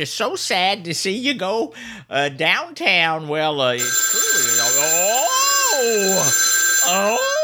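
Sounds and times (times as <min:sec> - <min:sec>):
speech: 0:00.0 - 0:07.3
telephone ringing with warbling electronic tone: 0:03.8 - 0:07.4.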